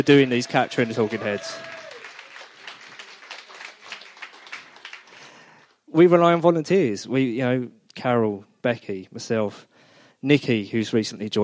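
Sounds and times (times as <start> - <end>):
speech: 0.0 - 1.7, 6.0 - 11.4
audience applause: 0.0 - 5.6.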